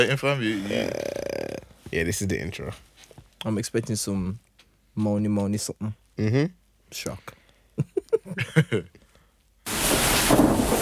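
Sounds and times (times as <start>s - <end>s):
speech: 0.0s - 4.4s, 5.0s - 9.0s
voice-like sounds: 0.4s - 1.8s
laughter: 7.8s - 9.0s
heavy rain: 9.7s - 10.7s.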